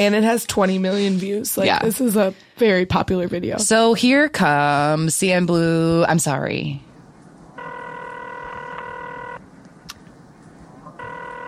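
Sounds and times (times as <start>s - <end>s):
speech: 0.0s - 6.9s
low hum: 0.0s - 11.4s
telephone ring tone: 7.6s - 9.4s, 11.0s - 11.4s.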